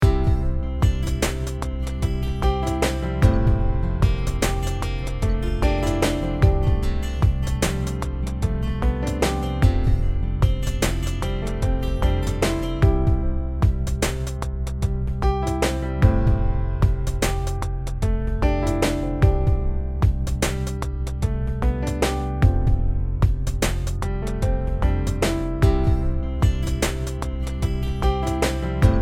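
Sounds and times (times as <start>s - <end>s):
blues guitar: 0.0s - 29.0s.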